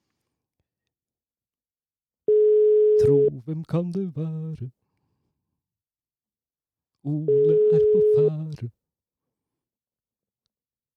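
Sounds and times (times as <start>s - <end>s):
steady electronic telephone ringback tone while placing a phone call: 2.3s - 3.3s, 7.3s - 8.4s
speech: 3.1s - 4.8s, 7.0s - 8.8s.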